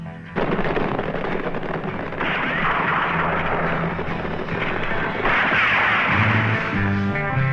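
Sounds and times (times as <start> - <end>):
loud dense rapid gunfire with booming shots and rumbling blasts: 0.4 - 7.3.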